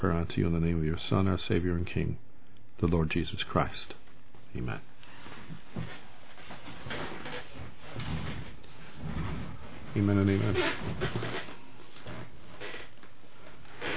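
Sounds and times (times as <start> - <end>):
speech: 0.0 - 4.9, 5.5 - 6.0, 10.0 - 11.5
squeaky chair creaking: 5.1 - 13.9.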